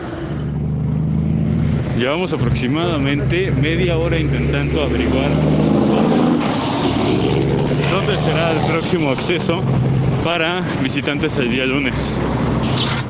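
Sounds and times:
cars passing on a dirt road: 0:00.0 - 0:13.0
speech: 0:02.0 - 0:13.0.

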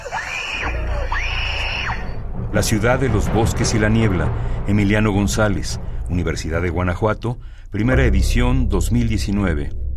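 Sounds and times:
child screaming in horror: 0:00.0 - 0:02.2
low rumbling background: 0:00.8 - 0:09.9
speech: 0:02.5 - 0:09.8.

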